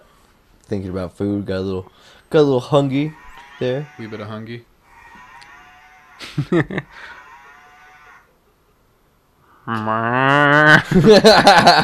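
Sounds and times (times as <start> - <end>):
speech: 0.7 - 4.7, 6.3 - 7.2, 9.6 - 11.8
dog's toy cow moo with rising warble: 3.2 - 6.2, 7.1 - 8.3
laughter: 6.2 - 7.0, 10.7 - 11.8.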